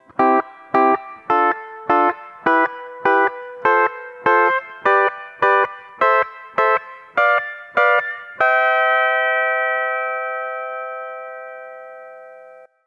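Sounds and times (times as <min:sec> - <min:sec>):
steel guitar playing ascending diatonic triads: 0:00.0 - 0:12.7.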